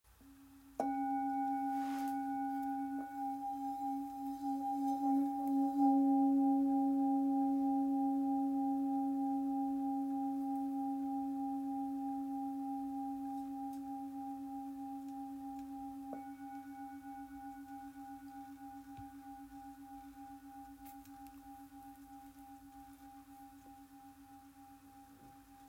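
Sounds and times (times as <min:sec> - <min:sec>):
full moon singing bowl tuned to C sharp ringing: 0:00.7 - 0:25.6.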